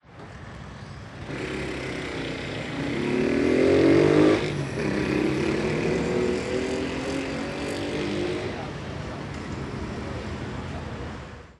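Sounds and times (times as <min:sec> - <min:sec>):
motorcycle accelerating and leaving: 0:01.2 - 0:08.7.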